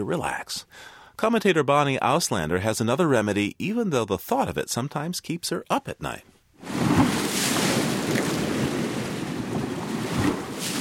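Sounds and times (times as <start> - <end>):
speech: 0.0 - 6.8
waves breaking and rolling onto the shore: 6.6 - 10.8
wind buffeting: 6.6 - 10.8.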